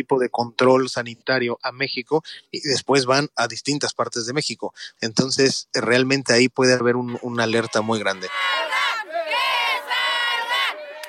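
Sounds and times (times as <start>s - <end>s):
speech: 0.0s - 8.6s
crowd of factory workers protesting and chanting in Ciudad Juárez Mexico: 7.1s - 11.0s.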